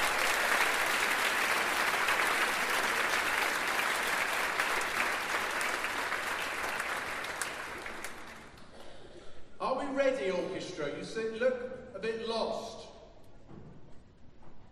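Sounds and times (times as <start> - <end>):
large audience applause for young choir: 0.0 - 8.7
speech: 10.0 - 12.8.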